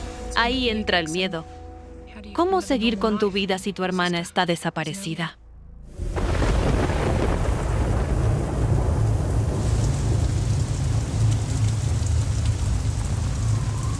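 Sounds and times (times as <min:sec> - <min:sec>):
speech: 0:00.4 - 0:01.5, 0:02.2 - 0:05.4
deep rumble of thunder: 0:05.9 - 0:13.9
steady heavy rain pouring: 0:05.9 - 0:13.9.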